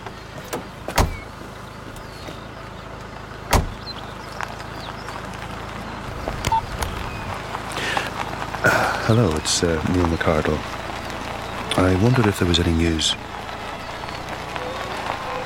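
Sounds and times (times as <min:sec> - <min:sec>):
car engine idling and pulling away: 0:00.0 - 0:15.4
car door shutting: 0:00.4 - 0:01.3, 0:03.5 - 0:03.9
speech: 0:08.6 - 0:10.8, 0:11.8 - 0:13.3.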